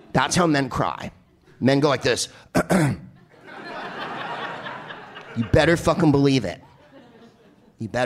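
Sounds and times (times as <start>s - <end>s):
speech: 0.2s - 3.0s, 5.4s - 6.7s, 7.8s - 8.0s
man coughing and clearing his throat: 2.5s - 3.2s
audience laughter: 3.2s - 7.9s.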